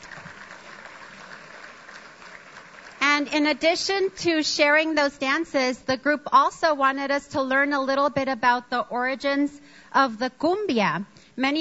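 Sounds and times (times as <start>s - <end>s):
audience applause: 0.0s - 3.0s
speech: 3.2s - 11.5s.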